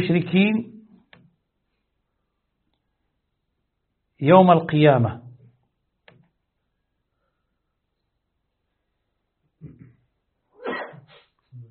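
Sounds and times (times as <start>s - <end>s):
speech: 0.0s - 0.8s, 4.2s - 5.2s
sneeze: 10.6s - 11.4s.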